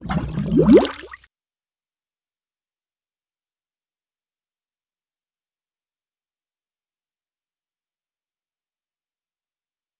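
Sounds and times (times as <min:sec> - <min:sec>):
single bubble: 0:00.0 - 0:01.2.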